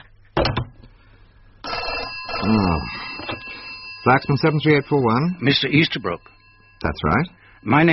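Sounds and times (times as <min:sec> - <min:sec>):
telephone bell ringing: 0:01.6 - 0:07.9
speech: 0:02.5 - 0:07.9.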